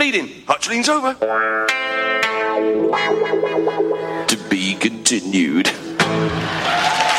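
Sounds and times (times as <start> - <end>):
speech: 0.1 - 7.0
electric guitar strumming with heavily processed tone: 1.2 - 4.5, 5.7 - 6.7.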